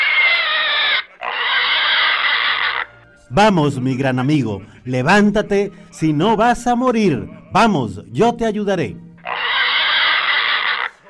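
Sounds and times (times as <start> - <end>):
pig squealing: 0.0 - 3.1, 9.2 - 11.0
speech: 3.3 - 9.0.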